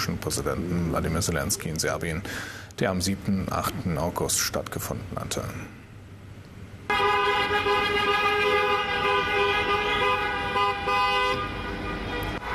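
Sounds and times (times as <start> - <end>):
speech: 0.0 - 5.8
car horns honking in a motorcade in Serbia: 6.9 - 12.5.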